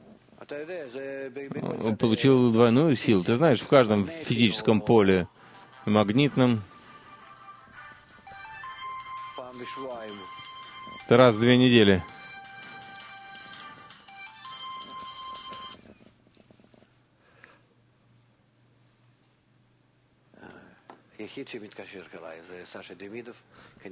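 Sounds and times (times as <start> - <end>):
speech: 0.5 - 6.7, 9.6 - 10.5, 11.1 - 12.2, 21.4 - 23.8
mobile phone ringtone playing a bright electronic melody: 5.6 - 15.9.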